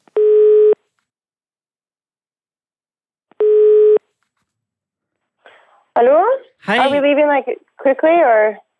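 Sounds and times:
phone ringback tone: 0:03.4 - 0:04.0
speech: 0:06.0 - 0:08.6.

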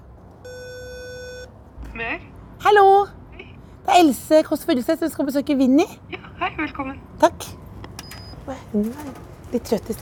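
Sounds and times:
electronic doorbell buzzing: 0:00.5 - 0:01.5
faint rumble: 0:01.6 - 0:09.9
speech: 0:02.0 - 0:03.2, 0:03.9 - 0:07.6, 0:08.5 - 0:09.9.

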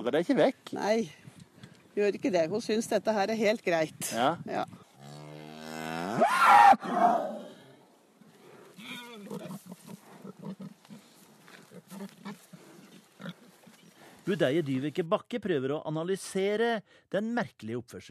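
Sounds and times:
speech: 0:00.0 - 0:01.3, 0:02.0 - 0:04.8, 0:06.2 - 0:07.4, 0:14.3 - 0:18.0
cow mooing: 0:05.0 - 0:07.7.

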